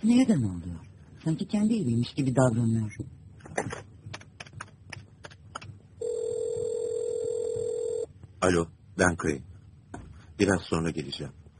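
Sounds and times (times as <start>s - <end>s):
speech: 0.0s - 3.8s, 8.4s - 9.5s, 10.4s - 11.4s
steady telephone line tone: 6.0s - 8.1s.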